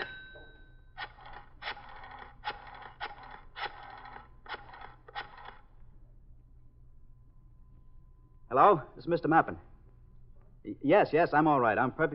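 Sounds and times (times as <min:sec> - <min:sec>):
telephone dial clicking while calling an office: 0:01.0 - 0:05.6
speech: 0:08.5 - 0:09.7, 0:10.6 - 0:12.1.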